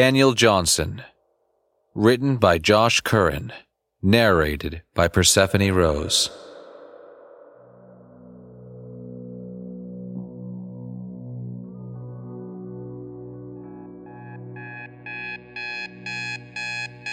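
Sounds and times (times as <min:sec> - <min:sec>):
speech: 0:00.0 - 0:01.1, 0:02.0 - 0:06.5
alarm clock low electronic drone: 0:06.2 - 0:17.0
alarm clock beeping: 0:14.1 - 0:17.1.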